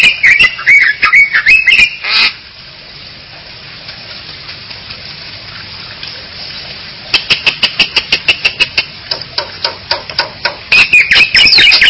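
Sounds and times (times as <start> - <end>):
Bali myna squawking calls: 0.0 - 2.4, 7.1 - 8.9, 10.7 - 11.8.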